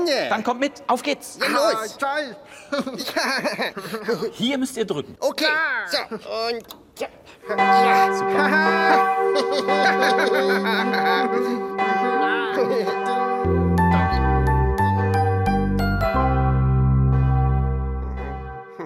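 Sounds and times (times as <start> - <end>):
speech: 0.1 - 13.6
bells ringing: 7.5 - 18.8
light laughter: 9.3 - 11.7.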